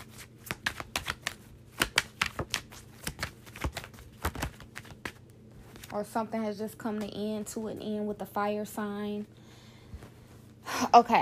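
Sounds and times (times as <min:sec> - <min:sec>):
tarot cards being drawn and handled: 0:00.1 - 0:05.2
speech: 0:06.0 - 0:09.4, 0:10.9 - 0:11.2.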